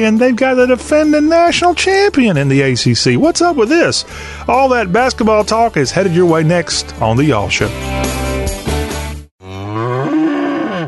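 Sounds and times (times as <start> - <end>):
speech: 0.0 - 8.2
cow mooing: 9.4 - 10.8.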